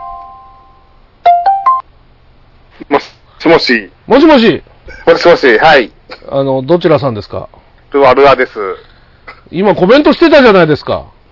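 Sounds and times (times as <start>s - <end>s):
steady electronic phone tone: 0.0s - 1.8s
speech: 2.8s - 8.9s, 9.5s - 11.1s.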